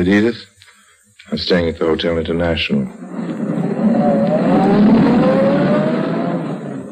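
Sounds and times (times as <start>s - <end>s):
speech: 0.0s - 0.5s, 1.3s - 5.0s
luxury limousine engine humming while driving: 3.0s - 6.9s.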